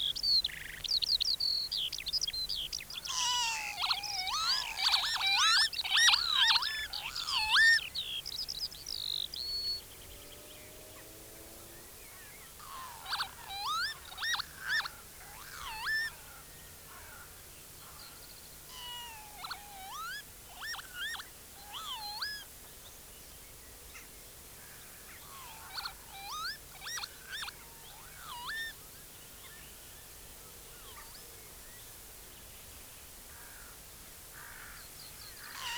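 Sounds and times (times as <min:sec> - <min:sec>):
northern lapwing display song during courtship flight over fields: 0:01.6 - 0:09.8, 0:12.0 - 0:16.5, 0:17.1 - 0:22.5, 0:25.1 - 0:28.8, 0:35.3 - 0:35.7.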